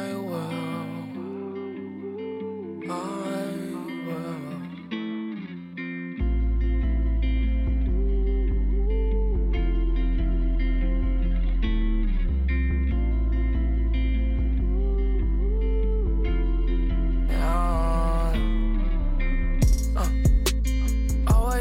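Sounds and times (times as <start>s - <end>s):
hip-hop song with sung vocals and booming bass beat: 0.0s - 5.5s, 6.2s - 21.6s.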